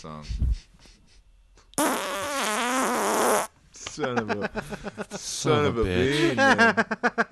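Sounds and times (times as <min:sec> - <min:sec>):
speech: 0:00.0 - 0:01.0, 0:01.8 - 0:02.3, 0:04.0 - 0:07.3
high drawn-out fart sound effect: 0:01.8 - 0:03.5
laughter: 0:03.9 - 0:07.3.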